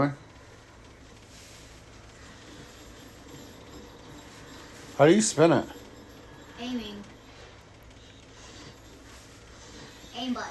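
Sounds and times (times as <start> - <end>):
speech: 0.0 - 0.2, 5.0 - 5.8, 6.6 - 7.1, 10.2 - 10.4
train passing on rails: 0.0 - 10.4.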